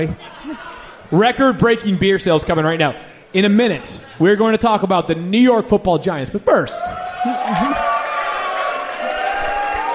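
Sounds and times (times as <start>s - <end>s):
speech: 0.0s - 7.8s
large crowd cheering: 6.7s - 9.9s
large crowd applauding: 7.3s - 9.9s.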